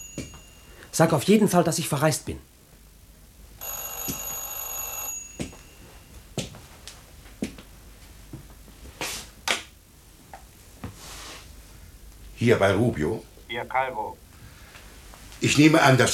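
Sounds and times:
telephone ringing with an electronic trill: 0:00.0 - 0:01.0, 0:03.6 - 0:06.3
speech: 0:01.0 - 0:02.5, 0:12.5 - 0:14.2, 0:15.4 - 0:16.1.

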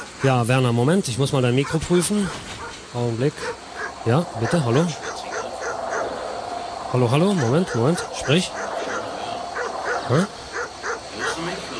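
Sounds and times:
hiss: 0:00.0 - 0:11.7
speech: 0:00.2 - 0:05.2, 0:06.9 - 0:08.6, 0:10.1 - 0:10.4
dog barking: 0:01.6 - 0:02.8, 0:03.4 - 0:06.2, 0:07.4 - 0:11.6.

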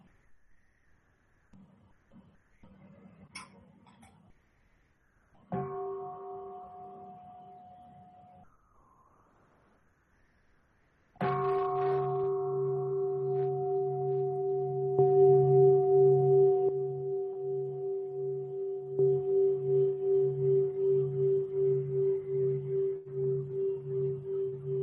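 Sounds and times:
meditation bell invited during a Buddhist dharma talk: 0:05.6 - 0:08.4, 0:11.2 - 0:24.8.

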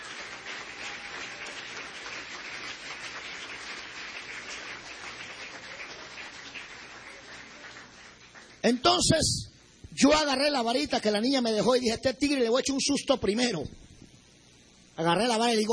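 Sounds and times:
crowd applause at a religious testimony gathering: 0:00.0 - 0:08.6
speech: 0:08.6 - 0:13.8, 0:15.0 - 0:15.7.

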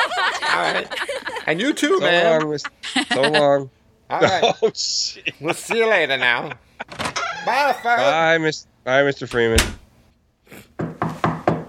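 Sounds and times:
laughter: 0:00.0 - 0:08.0
speech: 0:00.6 - 0:09.8
knocking on a door: 0:10.8 - 0:11.6.

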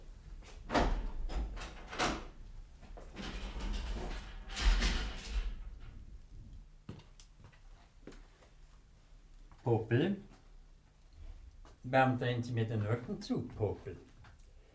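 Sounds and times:
prison cell door being unlocked and opened: 0:00.7 - 0:02.4, 0:03.2 - 0:06.0
speech: 0:09.7 - 0:10.3, 0:11.8 - 0:14.1.

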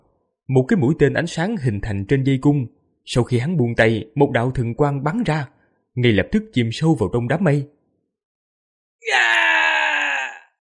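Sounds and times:
speech: 0:00.5 - 0:07.8, 0:09.0 - 0:09.5
person screaming in agony: 0:09.0 - 0:10.6.

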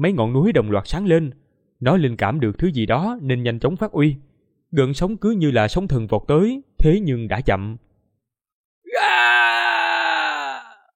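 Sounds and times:
speech: 0:00.0 - 0:07.8
man screaming as a sword strikes him: 0:08.9 - 0:10.9.

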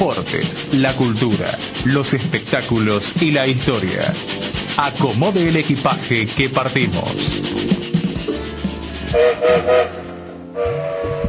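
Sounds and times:
speech: 0:00.0 - 0:07.8, 0:09.1 - 0:10.0
moving train rumbling and clattering: 0:00.0 - 0:11.2
train whistle blasts: 0:09.1 - 0:11.2.

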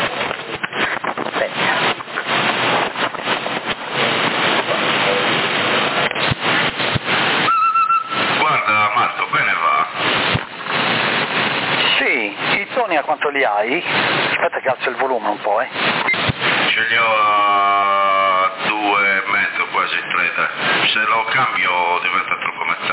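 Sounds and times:
static from a handheld CB radio: 0:00.0 - 0:22.9
electronic chirp tones from a black handheld CB radio: 0:07.4 - 0:09.9
voices over handheld CB radio: 0:07.5 - 0:10.2, 0:11.8 - 0:22.9
speech: 0:13.5 - 0:14.0.

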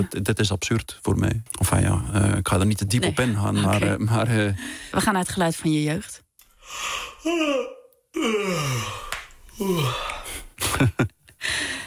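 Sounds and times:
speech: 0:00.0 - 0:11.8
person yawning: 0:07.2 - 0:10.3.

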